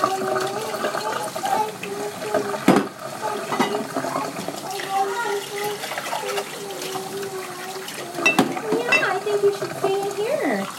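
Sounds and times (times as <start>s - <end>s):
people talking: 0.0s - 10.7s
tap water running in a kitchen while rinsing dishes: 0.0s - 10.7s.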